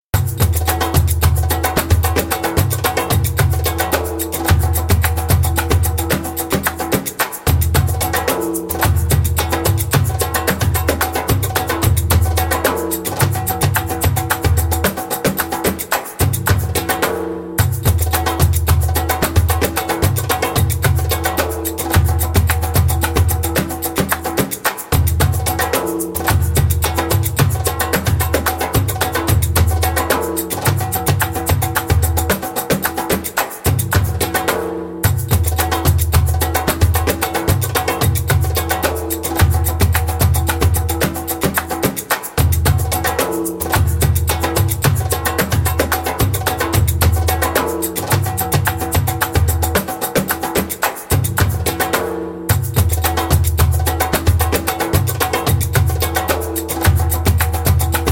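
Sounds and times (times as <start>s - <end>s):
djembe drumming: 0.1s - 58.1s.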